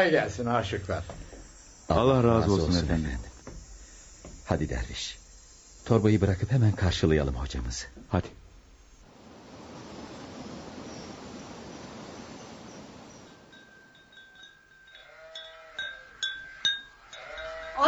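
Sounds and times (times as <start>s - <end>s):
speech: 0.0s - 1.2s, 1.9s - 3.3s, 4.5s - 5.2s, 5.8s - 8.4s
steady broadband noise: 0.0s - 14.9s
sheep bleating: 15.0s - 17.8s.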